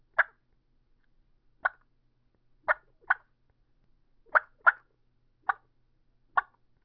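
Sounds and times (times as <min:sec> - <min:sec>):
Ultra Mag 4 turkey mouth call clucks: 0:00.0 - 0:00.4, 0:01.6 - 0:01.8, 0:02.6 - 0:03.3, 0:04.3 - 0:05.7, 0:06.3 - 0:06.6.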